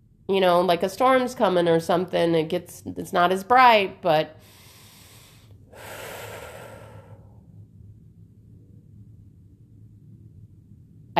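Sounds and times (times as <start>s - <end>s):
low hum: 0.0s - 11.1s
speech: 0.3s - 4.6s
person taking a breath: 4.4s - 7.4s.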